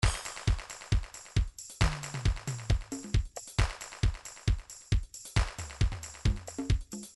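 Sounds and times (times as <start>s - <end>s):
trance MIDI loop beats: 0.0s - 7.1s.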